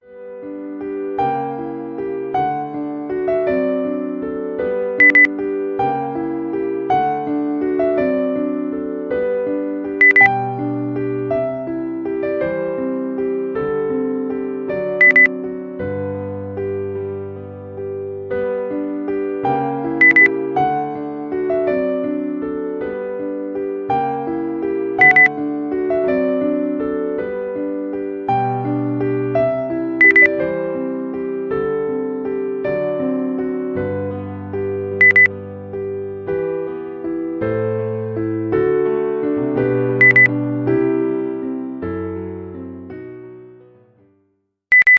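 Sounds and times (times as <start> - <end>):
classical music: 0.0 - 44.1.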